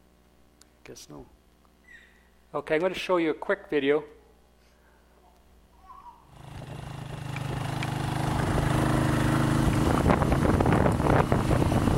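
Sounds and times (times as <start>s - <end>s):
speech: 0.9s - 1.4s, 2.5s - 4.2s
wind noise buffeting the microphone from riding a motorcycle: 6.4s - 11.9s.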